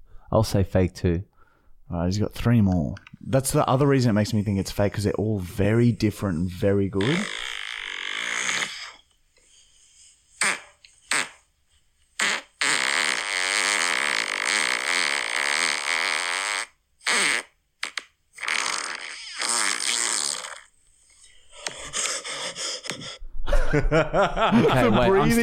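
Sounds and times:
speech: 0.3 - 1.3, 1.9 - 7.4, 23.8 - 25.4
loud mouth-made fart noises: 7.0 - 9.1, 10.4 - 11.5, 12.2 - 20.8
laughter: 23.5 - 25.4.

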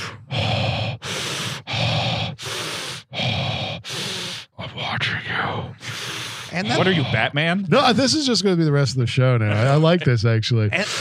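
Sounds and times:
person heavy breathing imitating a prank caller's panting: 0.0 - 8.1, 10.7 - 10.9
speech: 6.5 - 10.9.

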